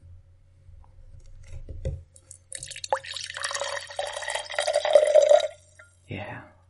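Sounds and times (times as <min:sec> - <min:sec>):
faint low hum: 0:00.0 - 0:06.6
rum poured slowly into a glass: 0:02.3 - 0:06.0.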